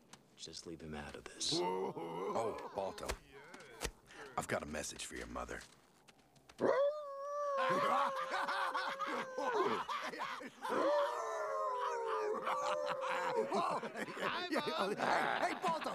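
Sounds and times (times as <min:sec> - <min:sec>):
speech: 0:00.4 - 0:03.3, 0:04.4 - 0:05.8, 0:09.6 - 0:11.2, 0:12.5 - 0:15.9
laughter: 0:01.4 - 0:04.4, 0:07.5 - 0:15.9
dog howling like a wolf: 0:06.6 - 0:14.0.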